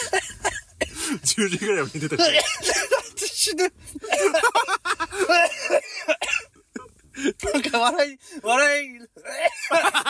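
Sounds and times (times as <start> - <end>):
person coughing fit tangled with laughter: 0.0 - 1.2, 2.2 - 7.6, 9.2 - 10.0
speech: 0.1 - 0.5, 1.2 - 4.5, 7.8 - 9.0.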